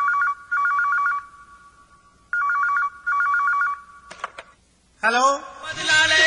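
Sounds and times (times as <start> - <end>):
telephone ringing with electronic trilling: 0.0 - 4.4
telephone click: 4.1 - 4.6
speech: 5.0 - 6.1.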